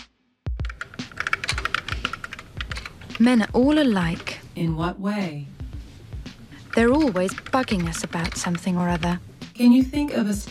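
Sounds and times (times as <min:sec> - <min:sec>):
typing on an electric typewriter: 0:00.7 - 0:03.3, 0:06.6 - 0:09.2
speech: 0:03.2 - 0:05.6, 0:06.8 - 0:10.4.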